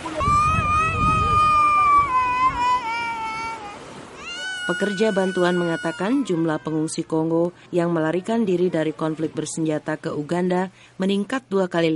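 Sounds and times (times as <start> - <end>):
baby wailing in a high-pitched cry: 0.2 - 6.9
speech: 4.7 - 11.9.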